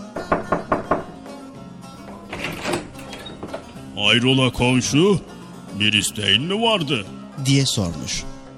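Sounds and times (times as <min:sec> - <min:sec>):
firm knocks on a wooden door: 0:00.0 - 0:01.3
soft creak of a door opening: 0:00.0 - 0:05.4
speech: 0:04.0 - 0:08.4.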